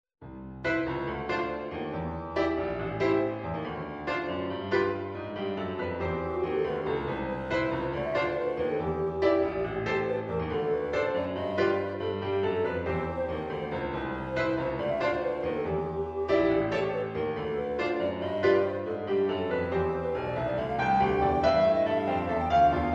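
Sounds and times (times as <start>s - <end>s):
piano playing swinging Christmas carols: 0.2s - 22.9s
treble recorder playing swinging Christmas carols: 6.1s - 22.9s.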